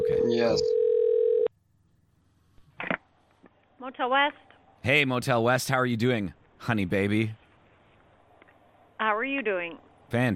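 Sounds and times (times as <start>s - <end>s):
electronic ring tone on a phone line: 0.0s - 1.5s
speech: 0.3s - 0.8s, 3.8s - 7.4s, 9.0s - 10.3s.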